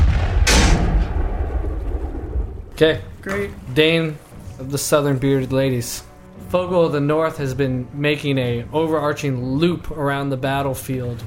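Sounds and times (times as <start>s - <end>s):
cannon shot booming with a sharp crack: 0.0s - 2.8s
low lingering rumble: 0.0s - 3.2s
speech: 2.8s - 11.2s.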